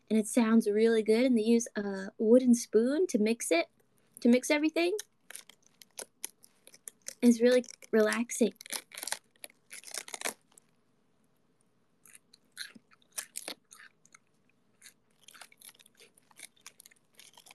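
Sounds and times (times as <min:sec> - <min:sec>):
speech: 0:00.1 - 0:05.5, 0:07.2 - 0:08.8
crisp crunching and chewing of fresh lettuce: 0:04.9 - 0:10.8, 0:12.0 - 0:17.5.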